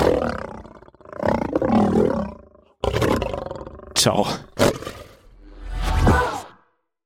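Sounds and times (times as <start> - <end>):
lion roaring: 0.0 - 5.3
speech: 4.0 - 4.5.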